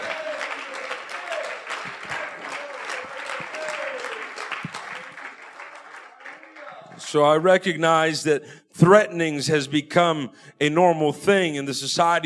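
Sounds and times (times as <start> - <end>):
large crowd applause: 0.0 - 7.7
speech: 7.1 - 12.2.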